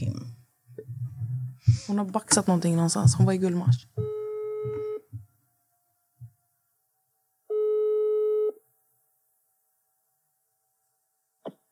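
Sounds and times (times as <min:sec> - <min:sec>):
faint thumps: 0:00.7 - 0:05.4
speech: 0:01.9 - 0:04.0
telephone ringback tone during outgoing call: 0:07.5 - 0:08.6.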